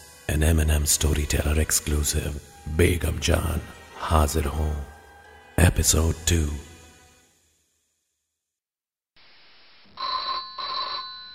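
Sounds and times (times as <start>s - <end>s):
speech: 0.3s - 4.9s, 5.6s - 6.7s
telephone ringing: 10.0s - 11.3s.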